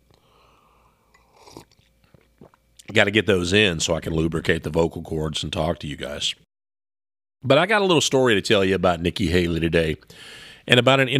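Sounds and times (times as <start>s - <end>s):
small wet mouth and swallowing sounds: 1.1s - 3.0s
soft slurp of hot coffee: 1.1s - 3.0s
speech: 2.9s - 6.4s, 7.4s - 11.1s.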